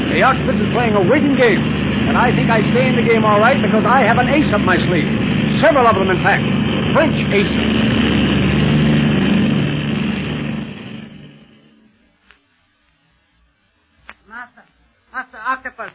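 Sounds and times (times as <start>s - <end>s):
airplane engine droning in flight while climbing: 0.0s - 12.2s
speech: 0.2s - 8.0s.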